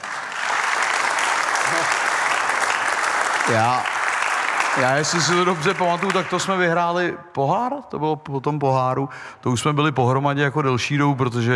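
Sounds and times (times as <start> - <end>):
crowd applauding: 0.0 - 7.0
speech: 3.4 - 3.9, 4.8 - 11.5.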